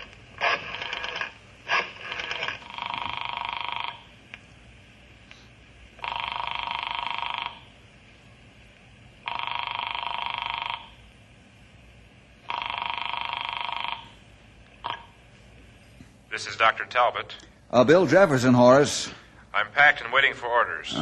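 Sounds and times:
telephone ringing on a call placed from an office: 0.0 - 4.1, 6.0 - 7.7, 9.2 - 11.0, 12.4 - 14.2
low hum: 0.0 - 20.9
speech: 16.4 - 20.9.

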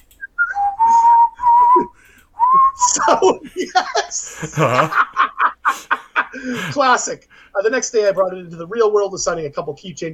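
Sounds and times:
person whistling a short tune: 0.2 - 2.9
laughter: 2.8 - 6.8
speech: 2.9 - 10.1.

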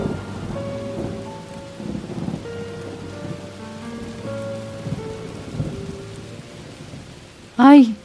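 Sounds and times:
heavy rain from a summer storm in Europe: 0.0 - 8.0
low rumbles of thunder: 0.0 - 8.0
speech: 7.6 - 8.0.

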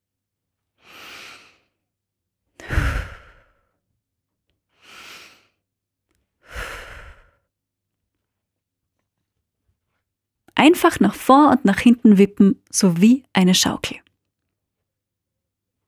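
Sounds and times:
slow deep breaths in and out during a breathing exercise: 0.8 - 1.8, 2.6 - 3.9, 4.7 - 5.7, 6.3 - 7.5
speech: 10.6 - 14.1.

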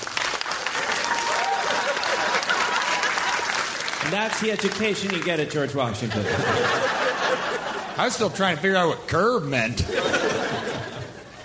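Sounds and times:
audience round of applause: 0.0 - 6.2
laughter: 1.2 - 3.5, 5.8 - 8.9, 9.7 - 11.4
speech: 4.1 - 10.1.

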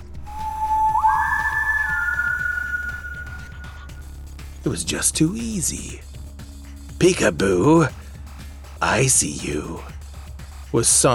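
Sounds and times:
three-note whistled tune: 0.1 - 4.1
speech: 4.6 - 6.1, 7.0 - 8.0, 8.8 - 9.9, 10.7 - 11.1.

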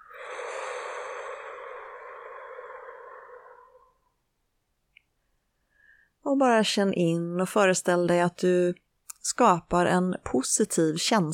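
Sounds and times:
slow deep exhale during a guided breathing exercise: 0.0 - 4.2
speech: 6.2 - 11.3.

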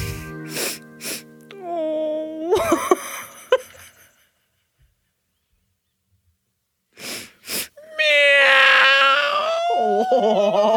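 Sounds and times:
laughter: 2.5 - 4.3, 9.7 - 10.7
cat meowing: 7.8 - 9.9.

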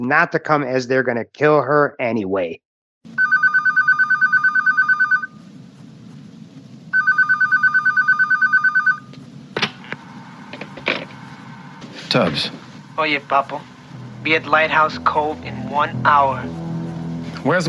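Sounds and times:
speech: 0.0 - 3.2, 12.2 - 16.6, 17.4 - 17.6
telephone ringing in electronic trilling pulses: 3.1 - 5.4, 6.9 - 9.1.

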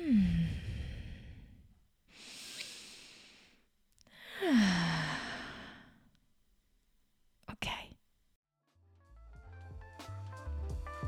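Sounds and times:
slow deep breaths ending in a sigh-like exhale: 0.0 - 6.1.

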